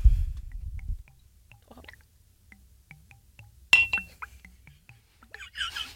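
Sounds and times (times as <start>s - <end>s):
glass clink: 3.7s - 4.3s.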